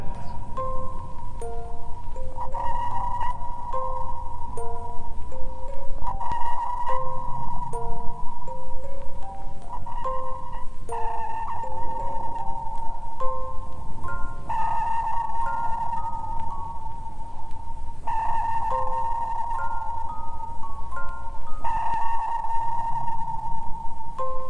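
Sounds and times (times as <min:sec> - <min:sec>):
sonar transmit pulse pings: 0:00.0 - 0:24.4.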